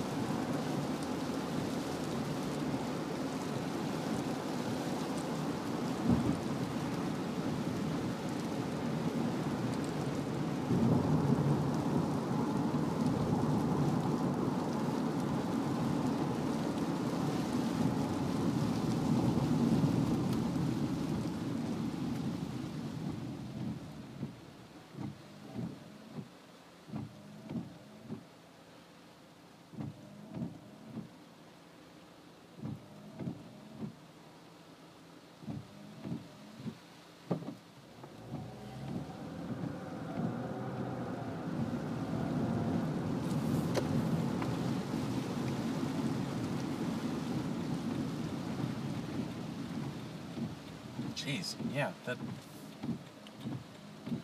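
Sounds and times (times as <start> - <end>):
heavy rain: 0.0 - 54.2
thunder rumbling: 9.7 - 22.5, 38.0 - 49.8
speech: 51.3 - 52.4.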